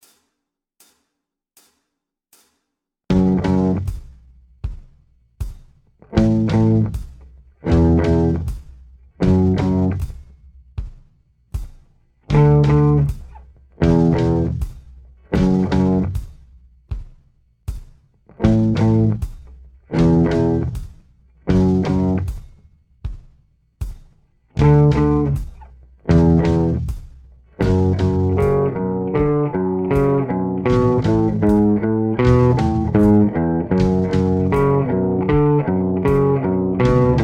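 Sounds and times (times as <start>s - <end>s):
slow guitar riff: 3.1s - 3.9s, 6.2s - 6.9s, 7.7s - 8.5s, 9.2s - 10.0s, 12.3s - 13.1s, 13.8s - 14.6s, 15.4s - 16.2s, 18.4s - 19.2s, 19.9s - 20.8s, 21.5s - 22.3s, 24.6s - 25.4s, 26.1s - 26.9s, 27.6s - 37.2s.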